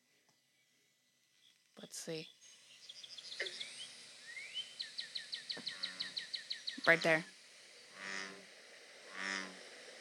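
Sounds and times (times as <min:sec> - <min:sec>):
hiss: 0:00.0 - 0:09.9
speech: 0:01.8 - 0:02.4, 0:06.9 - 0:07.3
bullfrog croaking: 0:05.6 - 0:07.2, 0:07.8 - 0:09.8.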